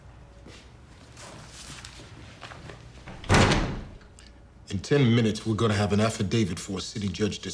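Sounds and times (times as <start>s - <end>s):
quiet room hum: 0.0s - 7.5s
door swinging shut: 3.1s - 4.0s
speech: 4.7s - 7.5s.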